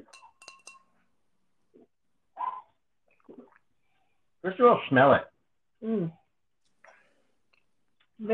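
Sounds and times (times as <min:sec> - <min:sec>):
glasses of water clinking together in a toast: 0:00.0 - 0:01.0
speech: 0:04.4 - 0:06.2.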